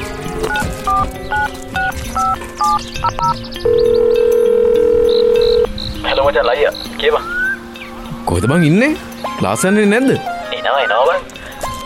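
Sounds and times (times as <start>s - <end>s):
telephone keypad dual-tone dialing beeps: 0.5s - 5.7s
speech: 2.6s - 4.2s, 6.2s - 7.4s, 8.3s - 11.4s.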